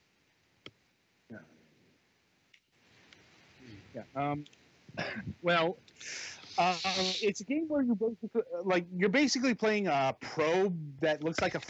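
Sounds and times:
speech: 1.3 - 1.6, 3.9 - 11.6
rough throat clearing: 5.0 - 5.3.

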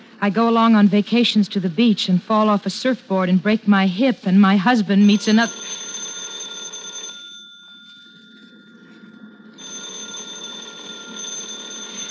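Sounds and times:
speech: 0.2 - 5.8
telephone bell ringing with a sustained electronic trill: 5.0 - 12.0.

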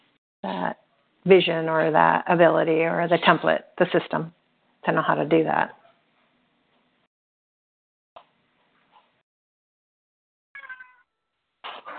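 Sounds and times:
speech: 0.4 - 5.8
cat meowing at a screen door: 10.6 - 11.1.

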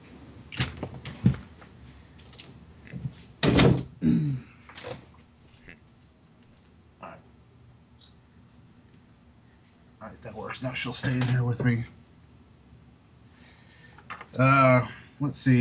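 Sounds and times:
door swinging shut with a solid thump and rattle: 3.4 - 3.9
speech: 10.3 - 12.0, 14.4 - 15.5.

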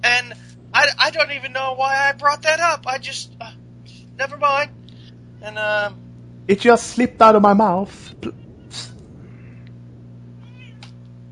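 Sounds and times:
steady low electrical hum: 0.0 - 11.3
speech: 0.2 - 3.6, 4.2 - 4.8, 5.4 - 8.9
cat meowing: 10.4 - 11.0.

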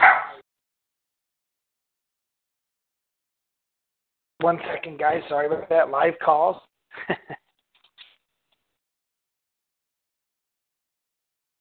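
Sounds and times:
dog barking: 0.0 - 0.4
speech: 4.4 - 7.4
laughter: 7.0 - 7.4.

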